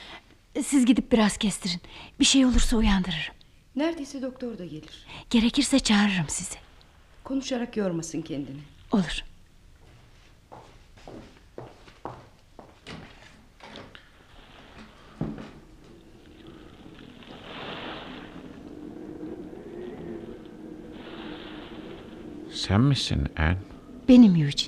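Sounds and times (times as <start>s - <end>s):
speech: 0.6s - 6.6s, 7.3s - 9.3s, 22.7s - 24.6s
footsteps: 9.8s - 19.0s
sea waves: 14.2s - 22.8s
wind rushing and hissing: 15.7s - 24.6s.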